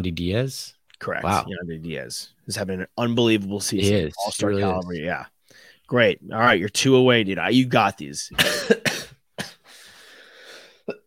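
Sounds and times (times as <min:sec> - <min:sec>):
speech: 0:00.0 - 0:08.9
harsh coughs: 0:08.3 - 0:09.7
raspy wheezing breath: 0:09.6 - 0:10.9.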